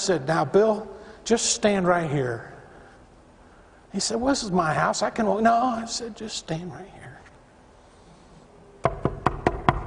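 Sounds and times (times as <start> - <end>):
speech: 0.0 - 2.5, 3.9 - 7.1
firm knocking on a door: 8.8 - 9.8.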